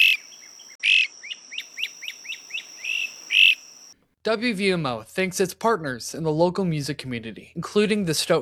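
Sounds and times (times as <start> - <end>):
bird singing: 0.0 - 3.9
faint steady high insect hum: 0.0 - 4.0
speech: 4.2 - 8.4.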